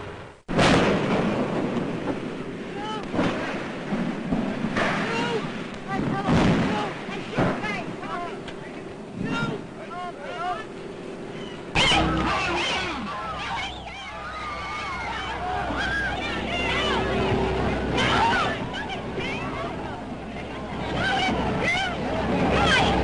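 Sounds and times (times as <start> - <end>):
constant roar of airship fire: 0.0 - 23.0
airship exploding in flames: 0.5 - 2.4, 3.1 - 8.0
excited voices crying out: 8.0 - 23.0.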